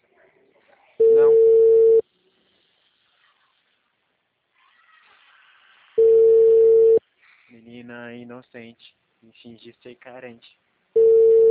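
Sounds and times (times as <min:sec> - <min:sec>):
telephone call tone: 0:01.0 - 0:02.0, 0:06.0 - 0:07.0, 0:11.0 - 0:11.4
speech: 0:08.1 - 0:10.6.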